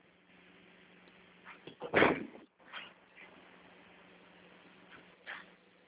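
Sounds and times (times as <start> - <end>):
office door thumping shut: 1.8 - 2.4.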